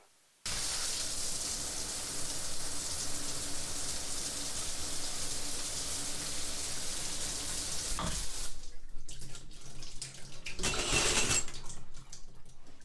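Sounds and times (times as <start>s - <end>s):
water gushing from pipes: 0.5s - 10.6s
shower water running: 0.5s - 12.8s.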